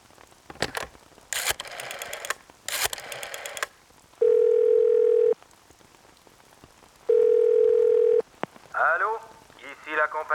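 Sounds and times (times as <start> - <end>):
telephone rotary dial whirring and clicking: 0.5 - 3.7
telephone ringing tones through the line: 0.5 - 5.4, 7.1 - 8.2.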